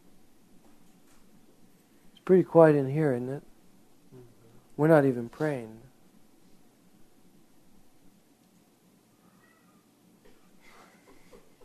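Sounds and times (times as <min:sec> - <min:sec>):
steady hiss of quiet room noise: 0:00.0 - 0:11.6
speech: 0:02.3 - 0:03.5, 0:04.8 - 0:05.8
cat meowing: 0:09.1 - 0:09.9.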